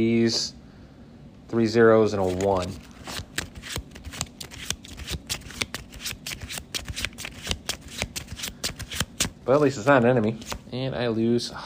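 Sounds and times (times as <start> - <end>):
speech: 0.0 - 0.6, 1.5 - 3.2, 9.5 - 11.6
playing cards handled and shuffled during a tabletop card game: 2.1 - 10.7.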